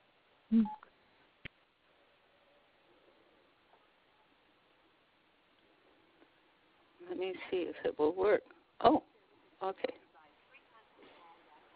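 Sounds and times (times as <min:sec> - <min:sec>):
cell phone keypad button tone: 0:00.5 - 0:00.8
speech: 0:00.5 - 0:00.8, 0:07.2 - 0:10.0.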